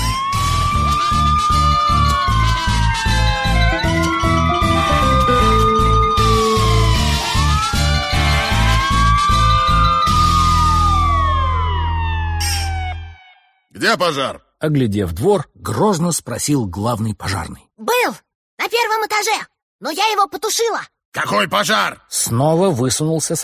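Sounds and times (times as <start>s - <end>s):
fire engine and ambulance sirens wailing: 0.0s - 13.7s
speech: 13.9s - 23.4s.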